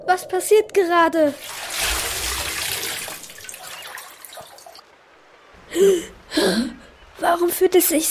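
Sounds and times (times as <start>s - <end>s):
speech: 0.1s - 2.0s, 5.7s - 8.1s
bubbling rush of sea water: 1.3s - 4.8s
something plunging into sea water off the coast: 1.3s - 4.8s.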